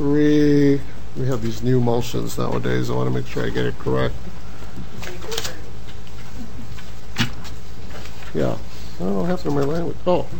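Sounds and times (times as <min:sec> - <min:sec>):
speech: 0:00.0 - 0:04.4, 0:09.4 - 0:10.3
low steady room hum: 0:00.0 - 0:10.3
sheet of paper being flipped over: 0:05.0 - 0:10.3.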